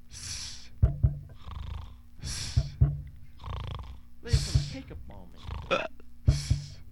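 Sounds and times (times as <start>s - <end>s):
deep lub-dub heartbeats: 0.7s - 1.5s, 2.2s - 3.3s, 4.3s - 5.0s, 6.3s - 6.8s
rasping snore-like breaths: 1.3s - 2.7s, 3.4s - 4.0s, 5.4s - 6.8s
speech: 4.9s - 5.9s.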